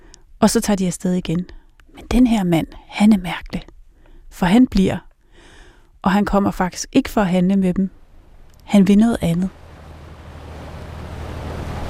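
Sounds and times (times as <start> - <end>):
wind: 0.0 - 11.8
speech: 0.4 - 3.7, 4.3 - 5.1, 6.0 - 8.0, 8.7 - 9.6
water rushing past a ship cutting through a Greenland fjord: 9.2 - 11.8.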